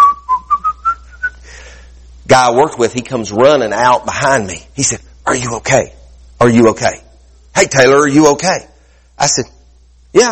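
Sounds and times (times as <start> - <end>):
person whistling a tune: 0.0 - 1.4
speech: 2.3 - 7.0, 7.6 - 10.3.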